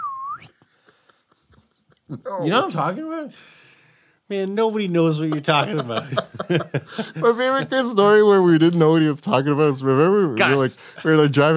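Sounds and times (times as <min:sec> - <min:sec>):
person whistling imitating a pee whistle: 0:00.0 - 0:00.6
speech: 0:02.1 - 0:03.6, 0:04.3 - 0:11.5
laughter: 0:05.2 - 0:08.1.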